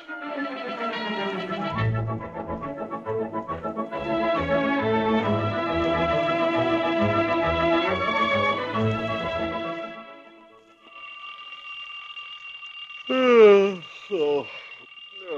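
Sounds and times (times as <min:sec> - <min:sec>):
alarm clock ringing: 0:00.6 - 0:15.3
person speaking: 0:13.1 - 0:15.3.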